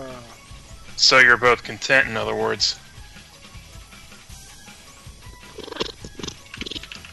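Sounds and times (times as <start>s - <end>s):
speech: 1.0s - 2.8s
male domestic cat purring loudly while being petted: 5.4s - 6.9s.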